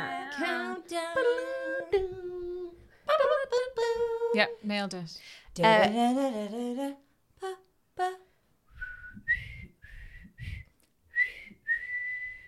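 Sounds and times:
person humming or singing: 0.0 - 4.6, 5.6 - 8.2
speech: 4.4 - 8.2
person whistling a short halting tune: 8.7 - 12.4.

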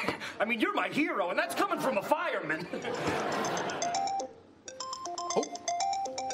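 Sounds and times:
speech: 0.4 - 3.8, 5.3 - 5.6
laughter: 1.7 - 4.1
electronic work phone ringtone for incoming call: 2.9 - 6.3.

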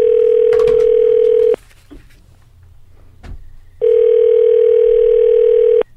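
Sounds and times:
telephone dial tone: 0.0 - 1.6, 3.8 - 5.8
telephone dialing clicks and taps: 0.4 - 1.6.

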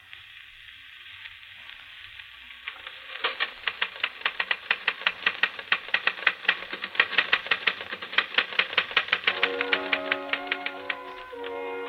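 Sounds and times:
faint phonograph hiss: 0.0 - 11.8
typewriter keystrokes played from a record on a portable phonograph: 2.9 - 11.8.

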